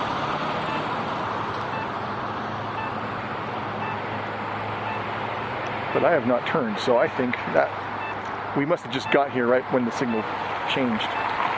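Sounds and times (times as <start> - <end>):
cars driving past on cross street: 0.0 - 11.5
speech: 6.0 - 7.8, 8.5 - 11.2.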